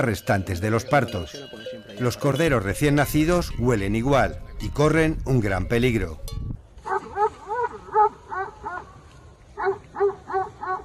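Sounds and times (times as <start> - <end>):
speech: 0.0 - 6.4
mastiff barking while defending a sheep flock against wild boars: 6.9 - 8.8, 9.6 - 10.8.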